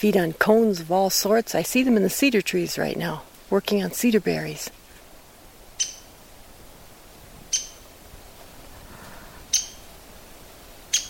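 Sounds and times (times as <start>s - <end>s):
speech: 0.0s - 4.8s
downy woodpecker pik call notes: 5.7s - 6.2s, 7.5s - 7.9s, 9.5s - 9.9s, 10.9s - 11.0s.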